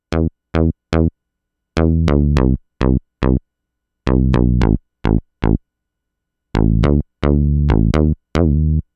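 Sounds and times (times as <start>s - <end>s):
thin Juno6 synth bass: 0.0s - 1.2s, 1.8s - 3.4s, 4.1s - 5.6s, 6.6s - 8.9s.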